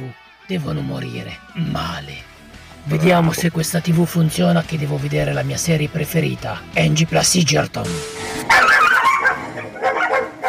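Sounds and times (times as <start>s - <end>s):
speech: 0.5s - 8.8s
four female dogs barking and yipping: 8.2s - 10.4s.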